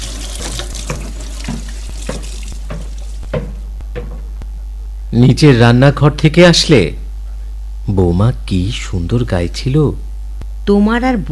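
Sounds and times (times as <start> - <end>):
water running from a tap into a sink during dishwashing: 0.0 - 4.2
speech: 5.2 - 7.0, 7.9 - 10.1, 10.7 - 11.3.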